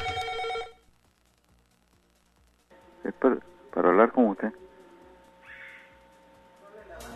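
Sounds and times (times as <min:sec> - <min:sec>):
telephone ringing for an incoming call: 0:00.0 - 0:00.8
speech: 0:03.2 - 0:04.6.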